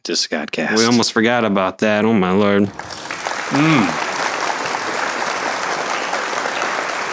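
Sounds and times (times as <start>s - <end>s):
speech: 0.0s - 4.1s
person exclaiming: 0.8s - 1.0s, 3.5s - 4.0s
large audience applauding: 2.7s - 7.1s.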